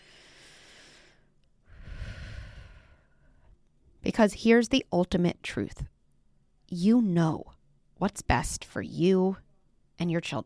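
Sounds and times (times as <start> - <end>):
slow deep human breath: 0.0 - 3.6
speech: 4.2 - 5.9, 6.7 - 9.4, 10.0 - 10.4.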